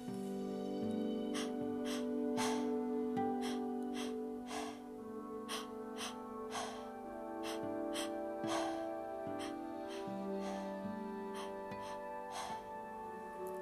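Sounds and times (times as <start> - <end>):
soft sustained music: 0.0 - 13.6
quick rhythmic breaths drawn in and blown out in a breathing exercise: 0.8 - 13.6.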